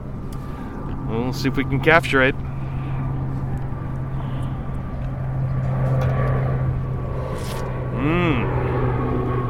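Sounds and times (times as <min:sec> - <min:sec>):
Coast Guard plane engine droning overhead at an Air Force base: 0:00.0 - 0:09.4
rising and falling whine of a Coast Guard plane: 0:00.0 - 0:09.4
speech: 0:01.1 - 0:02.5.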